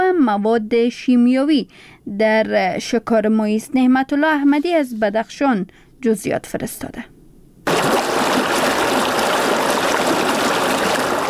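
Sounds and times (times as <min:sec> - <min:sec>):
speech: 0:00.3 - 0:07.1
river flowing steadily with rushing gurgling water: 0:07.7 - 0:11.2.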